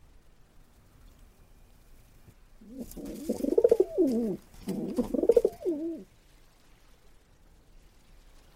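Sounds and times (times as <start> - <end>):
English carrier pigeon cooing: 2.6 - 6.1.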